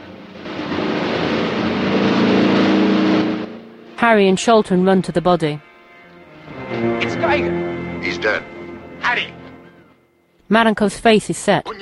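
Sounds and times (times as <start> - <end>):
boat engine roaring as the boat speeds away under a bridge: 0.0 - 10.1
speech: 4.0 - 5.7, 6.8 - 9.4, 10.5 - 11.7.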